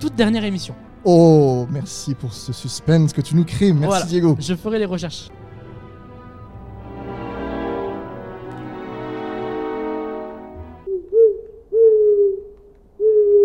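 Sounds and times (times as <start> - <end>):
speech: 0.0 - 5.4
fuller sustained tone: 3.9 - 11.0
owl hooting: 10.9 - 13.4.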